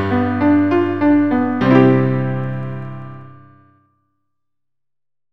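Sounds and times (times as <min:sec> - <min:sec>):
C Am F G chord progression: 0:00.1 - 0:03.6.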